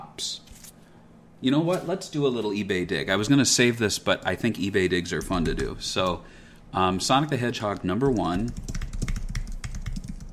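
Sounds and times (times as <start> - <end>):
low hum: 0.0 - 10.3
speech: 0.2 - 0.4, 1.4 - 8.8
typing on a computer keyboard: 5.2 - 6.2, 7.7 - 10.3.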